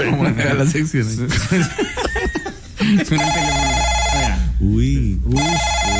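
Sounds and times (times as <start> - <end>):
people chuckling and laughing: 0.0 - 3.3
people talking: 0.0 - 5.9
electronic telephone ringing: 3.2 - 4.5, 5.4 - 5.9.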